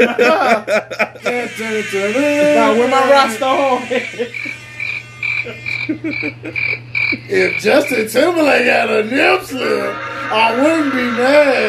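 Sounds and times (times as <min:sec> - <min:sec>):
laughter: 0:00.0 - 0:04.6, 0:05.4 - 0:07.3
speech: 0:00.0 - 0:04.6, 0:05.4 - 0:11.6
low hum: 0:00.0 - 0:11.6
crickets chirping: 0:04.2 - 0:11.2.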